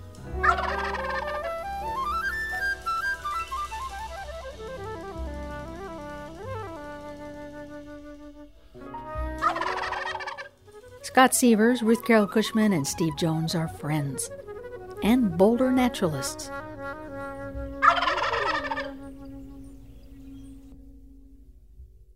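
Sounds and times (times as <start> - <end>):
sliding whistled melody: 0.0 - 21.2
wild turkey gobbling: 0.4 - 2.3, 9.4 - 10.6, 17.8 - 19.0
speech: 11.2 - 14.4, 15.0 - 16.6.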